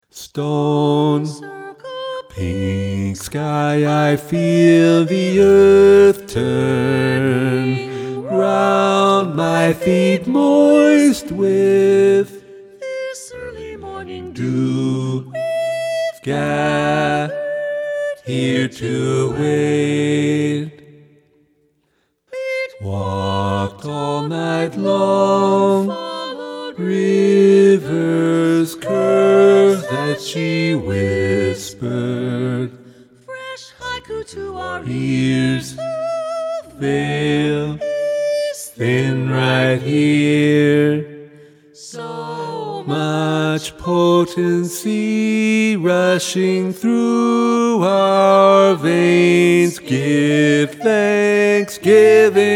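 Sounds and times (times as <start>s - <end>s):
choir singing with tenor focus: 0.2s - 21.2s, 22.3s - 52.5s.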